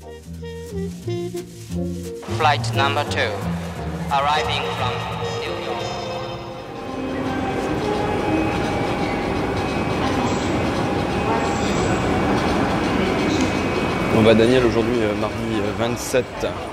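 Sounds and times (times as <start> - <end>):
train arriving at the Gare de Lyon station in Paris, heavy rumble: 0.0 - 16.7
speech: 1.0 - 5.9, 14.2 - 16.7
train wheels squealing at the Gare de Lyon station in Paris: 5.7 - 15.9.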